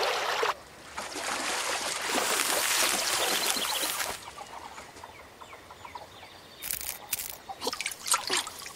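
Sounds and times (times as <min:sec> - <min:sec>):
stream water trickling and rushing: 0:00.0 - 0:04.5, 0:06.8 - 0:08.7.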